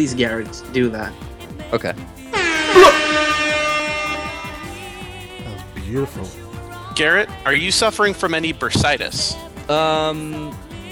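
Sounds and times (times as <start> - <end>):
speech: 0.0 - 3.3, 5.9 - 6.4, 7.0 - 10.6
air horn blast blown in celebration: 2.3 - 5.0.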